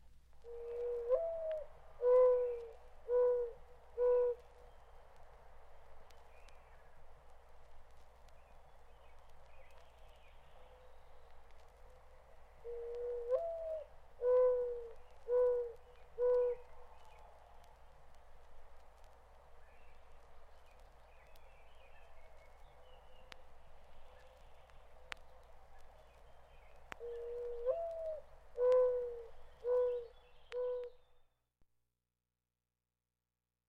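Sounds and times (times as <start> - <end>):
mourning dove cooing in a garden: 0.4 - 4.5, 12.6 - 17.1, 26.9 - 31.0.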